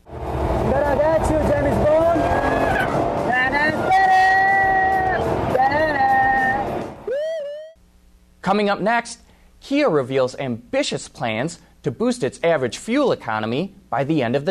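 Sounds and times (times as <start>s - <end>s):
Jaguar supercar engine roaring driven hard on a race track: 0.0s - 7.1s
speech: 0.9s - 1.8s, 8.5s - 14.4s.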